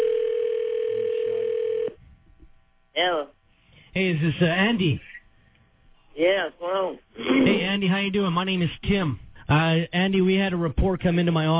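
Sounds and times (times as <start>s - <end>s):
telephone dial tone while placing a call: 0.0s - 2.0s
speech: 4.0s - 5.2s, 6.2s - 11.5s.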